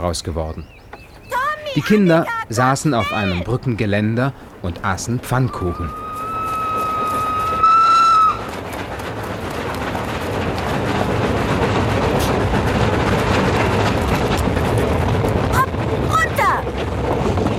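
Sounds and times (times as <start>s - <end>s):
speech: 0.0s - 0.8s, 1.8s - 6.0s
train rolling past with rumble and rattle: 0.0s - 17.5s
train whistle blast: 5.9s - 8.4s.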